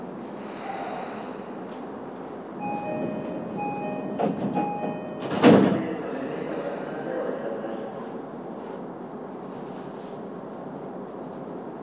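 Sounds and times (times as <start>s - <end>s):
subway train rumbling as it starts moving: 0.0s - 11.8s
subway car door chime beeping: 2.6s - 5.9s.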